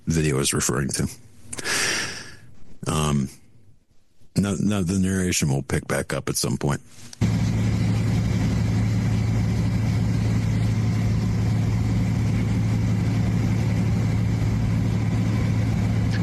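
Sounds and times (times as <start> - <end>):
speech: 0.1 - 2.0, 2.8 - 3.4, 4.4 - 7.3
aircraft engine drone: 7.2 - 16.2.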